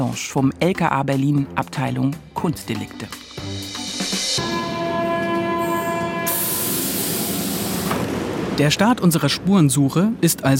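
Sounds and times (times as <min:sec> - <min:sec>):
speech: 0:00.1 - 0:03.6, 0:04.4 - 0:04.8, 0:08.6 - 0:10.5
underground train rumbling at a station in Berlin: 0:03.2 - 0:09.0.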